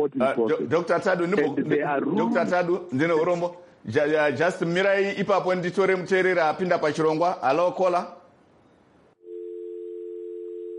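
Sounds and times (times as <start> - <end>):
speech: 0.0 - 8.2
telephone dial tone after a caller drops off a phone-in line: 9.2 - 10.7.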